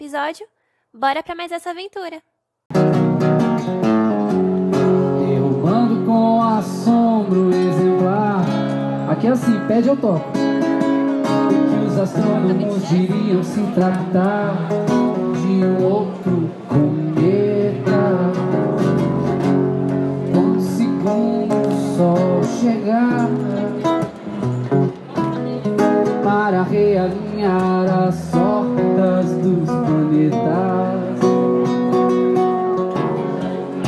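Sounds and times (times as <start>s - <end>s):
speech: 0.1s - 3.9s, 9.1s - 10.4s, 12.0s - 17.0s
steady instrumental accompaniment: 2.7s - 33.8s
male voice singing a Brazilian MPB song: 4.8s - 10.4s, 11.3s - 19.1s, 20.3s - 24.0s, 26.0s - 32.1s.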